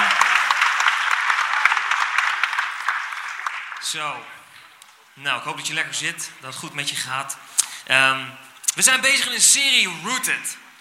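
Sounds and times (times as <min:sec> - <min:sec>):
large crowd applauding: 0:00.0 - 0:04.4
speech: 0:03.8 - 0:04.4, 0:05.2 - 0:10.6.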